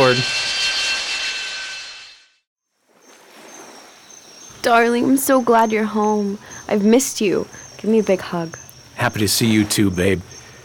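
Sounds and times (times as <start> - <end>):
jump jet aircraft engine roaring with a high steady whine: 0.0 - 2.1
speech: 0.1 - 0.5, 4.6 - 10.4.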